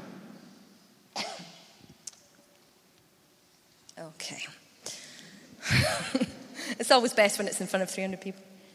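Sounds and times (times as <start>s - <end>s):
dry harsh coughs caused by dust from a building project in a house: 1.1s - 1.8s
speech: 4.2s - 5.0s, 6.9s - 8.5s.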